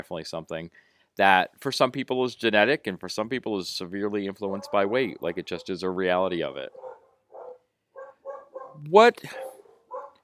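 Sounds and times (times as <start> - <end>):
speech: 0.0 - 6.9, 8.8 - 9.5
dogs barking: 4.4 - 10.2.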